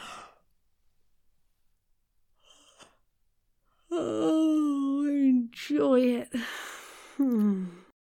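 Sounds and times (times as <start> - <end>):
person yawning with breathy airy exhalations: 3.9 - 4.9, 7.2 - 7.9
speech: 5.8 - 6.6, 7.2 - 7.8.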